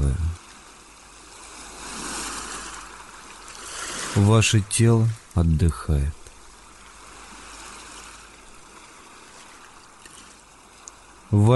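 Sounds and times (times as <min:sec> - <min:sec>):
ocean surf waves breaking: 0:00.0 - 0:05.4, 0:06.2 - 0:11.5
speech: 0:04.2 - 0:06.2, 0:11.3 - 0:11.5.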